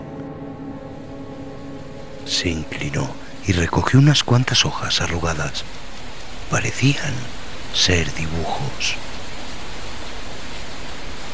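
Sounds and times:
light rain running down the glass of a skylight: 2.2 - 11.3
speech: 2.3 - 5.8, 6.5 - 9.1.

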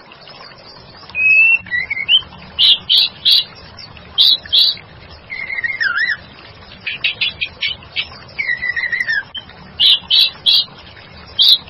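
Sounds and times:
white-rumped shama song with whistles, harsh buzzy bursts and sharp high clicks: 1.2 - 3.5, 4.2 - 6.2, 6.8 - 10.7.

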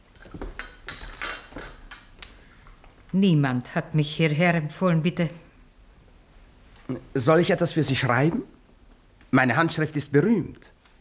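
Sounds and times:
glasses and cups clinking as they are cleared away: 0.0 - 2.2
speech: 3.1 - 5.4, 6.9 - 8.6, 9.3 - 10.8.

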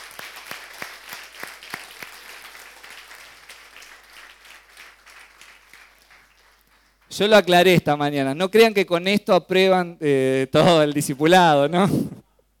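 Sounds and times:
audience applauding: 0.0 - 7.1
speech: 7.2 - 12.2.

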